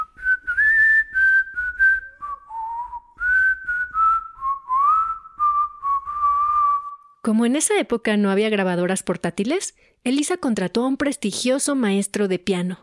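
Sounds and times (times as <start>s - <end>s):
person whistling a lively ranchero folk dance melody: 0.0s - 7.1s
speech: 7.3s - 12.8s.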